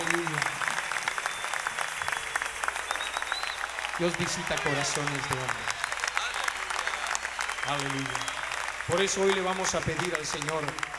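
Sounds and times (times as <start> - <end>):
audience applauding in worship: 0.0 - 10.9
speech: 4.0 - 5.8, 7.7 - 10.8.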